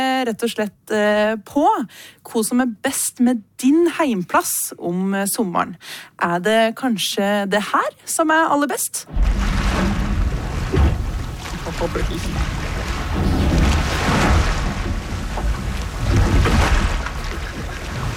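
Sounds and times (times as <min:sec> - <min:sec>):
speech: 0:00.2 - 0:09.9, 0:11.8 - 0:12.7
gentle waves lapping: 0:09.1 - 0:18.1
low rumble: 0:09.1 - 0:18.1.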